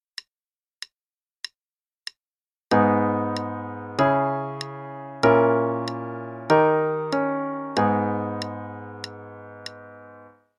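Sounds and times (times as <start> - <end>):
chord progression in G sharp minor: 2.7 - 10.4.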